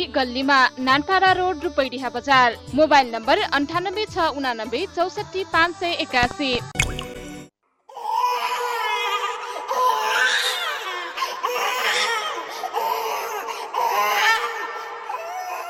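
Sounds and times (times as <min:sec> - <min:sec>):
speech: 0:00.0 - 0:06.8
fussy hungry-seeming baby crying: 0:07.9 - 0:15.6.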